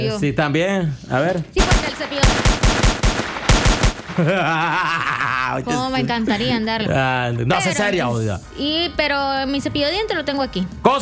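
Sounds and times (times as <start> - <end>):
speech: 0.0 - 2.4, 4.2 - 11.0
rapid gunfire bursts: 1.6 - 4.5
laughter: 4.0 - 7.2.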